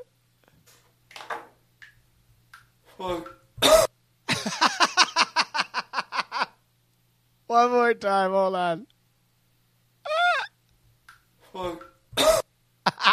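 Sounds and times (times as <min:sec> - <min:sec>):
speech: 0:03.0 - 0:03.4, 0:07.6 - 0:08.9, 0:11.6 - 0:11.9
person coughing: 0:03.6 - 0:03.9, 0:12.2 - 0:12.5
wheezy laughter: 0:04.3 - 0:06.6, 0:12.9 - 0:13.1.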